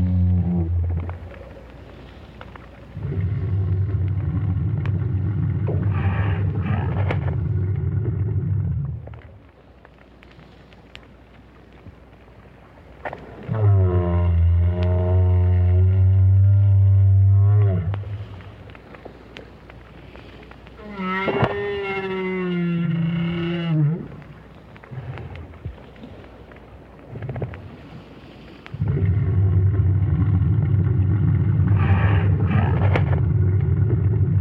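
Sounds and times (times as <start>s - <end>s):
lone adult whale's deep moaning calls recorded underwater with a hydrophone: 0.0s - 1.7s, 3.0s - 9.2s, 13.4s - 18.5s, 20.8s - 25.4s, 28.8s - 34.3s
faint rumbling underwater noise at the bottom of the sea: 0.0s - 34.3s.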